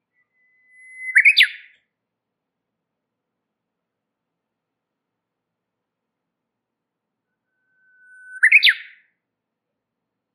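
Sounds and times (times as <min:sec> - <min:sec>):
warbler whistle and high twittering notes: 0:00.1 - 0:01.8, 0:07.5 - 0:09.1.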